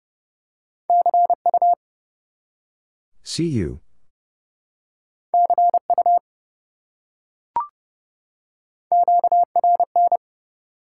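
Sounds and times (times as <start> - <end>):
fast mid-pitched Morse code beeps: 0.9 - 1.8, 5.4 - 6.2, 8.9 - 10.2
speech: 1.0 - 1.8, 3.2 - 3.8.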